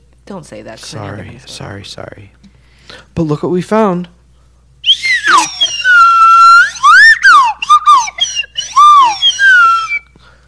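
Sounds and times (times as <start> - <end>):
speech: 0.3 - 4.2
slide whistle playing swooping notes: 4.8 - 10.1.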